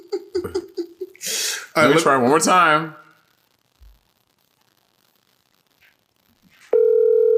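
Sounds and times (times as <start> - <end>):
laughter: 0.0 - 1.8
speech: 1.8 - 3.0
telephone busy signal: 6.8 - 7.3.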